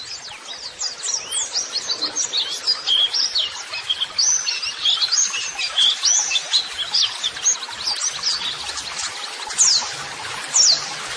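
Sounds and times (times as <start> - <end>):
pleci white-eye twittering song: 0.0 - 11.1.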